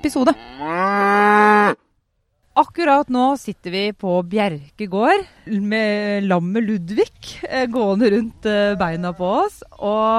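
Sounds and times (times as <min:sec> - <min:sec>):
speech: 0:00.0 - 0:01.8, 0:02.6 - 0:10.1
cow mooing in a herd on a regenerative organic farm: 0:00.2 - 0:01.8.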